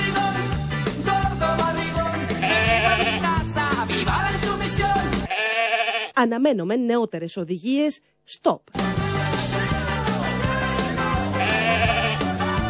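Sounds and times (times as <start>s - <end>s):
rhythmic musical backing: 0.0s - 5.3s, 8.8s - 12.6s
sheep bleating: 2.4s - 3.4s, 5.3s - 6.2s, 11.2s - 12.6s
speech: 6.2s - 9.0s.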